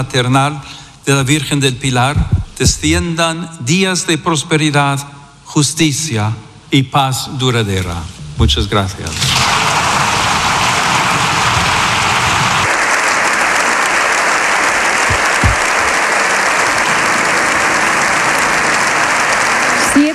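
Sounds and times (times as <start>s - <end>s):
speech: 0.0s - 9.6s
parliament members giving standing applause in a big hall: 9.3s - 20.1s.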